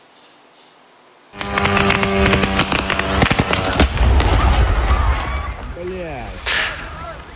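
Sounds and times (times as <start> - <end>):
drone explosion striking a warehouse: 1.4 - 5.8
crackling and popping debris: 1.4 - 7.3
voices: 1.4 - 7.3.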